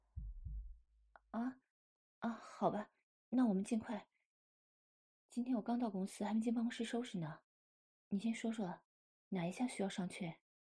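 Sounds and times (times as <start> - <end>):
fast heartbeat with deep double thumps: 0.0 - 0.8
speech: 2.6 - 4.1, 5.3 - 7.5, 8.1 - 10.4.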